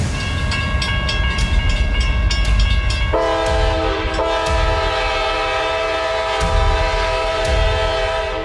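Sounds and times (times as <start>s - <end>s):
train from Algeria arriving at Tunis railway station with wheels clattering: 0.0s - 8.4s
long droning train horn: 3.1s - 8.4s.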